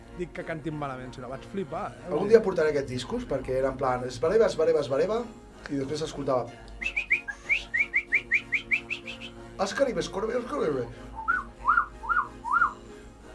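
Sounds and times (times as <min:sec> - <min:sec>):
speech: 0:00.2 - 0:07.0, 0:09.6 - 0:11.0
person whistling an imitation of birdsong: 0:06.8 - 0:09.4, 0:11.2 - 0:12.8.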